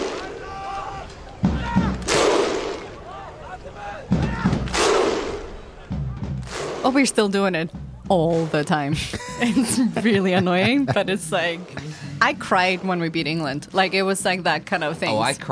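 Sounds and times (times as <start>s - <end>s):
huge stadium crowd massive shouted grunt: 0.1s - 5.1s
speech: 6.8s - 15.4s
laughter: 8.8s - 12.4s.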